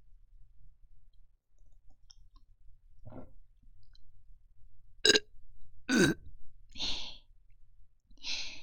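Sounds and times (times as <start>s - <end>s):
person burping after drinking carbonated drink: 5.9s - 6.2s.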